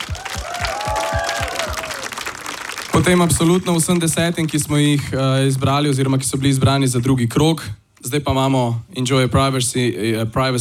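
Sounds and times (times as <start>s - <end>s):
audience applause for bands at a music contest final: 0.0s - 5.0s
speech: 3.0s - 10.5s.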